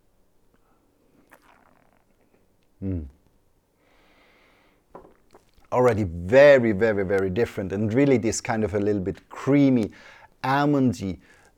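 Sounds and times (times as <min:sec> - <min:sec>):
faint mouth sounds: 0:00.5 - 0:03.3
person slurping matcha tea: 0:01.2 - 0:03.1
speech: 0:02.8 - 0:03.2, 0:05.7 - 0:11.4
airy drawing-in of breath: 0:03.8 - 0:04.8.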